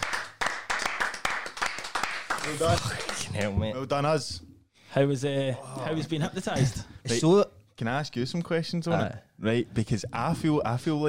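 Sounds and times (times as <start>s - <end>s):
small group applauding: 0.0s - 3.6s
speech: 2.4s - 11.0s.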